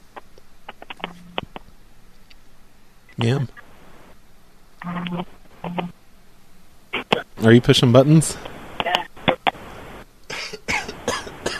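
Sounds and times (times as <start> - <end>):
speech: 3.2 - 3.6, 4.8 - 6.0, 7.4 - 8.5
person coughing: 10.3 - 11.5.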